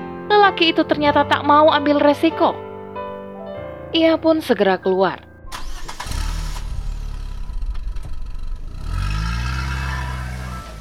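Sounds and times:
speech: 0:00.5 - 0:02.6, 0:03.9 - 0:05.2
150cc motorcycle engine revving: 0:05.7 - 0:10.8.

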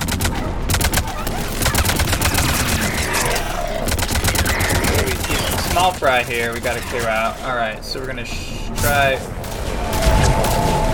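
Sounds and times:
video game gunfire: 0:00.0 - 0:07.3, 0:09.4 - 0:10.9
speech: 0:05.8 - 0:09.4.

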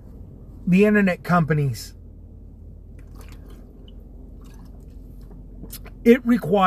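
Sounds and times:
steady low rumble: 0:00.0 - 0:06.6
speech: 0:00.7 - 0:02.0, 0:05.7 - 0:06.6
person slurping and drinking water: 0:03.0 - 0:04.9.

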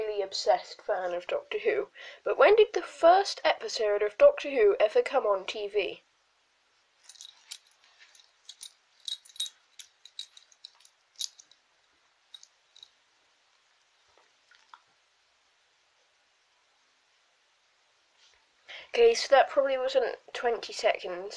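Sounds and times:
speech: 0:00.3 - 0:06.1, 0:19.0 - 0:21.3
metal tags on a pet's collar jingling as it scratches an itch: 0:07.0 - 0:11.6.

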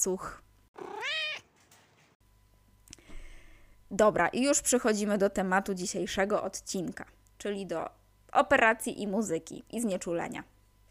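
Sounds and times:
speech: 0:00.0 - 0:00.4, 0:03.9 - 0:10.5
cat meowing: 0:00.8 - 0:01.5.

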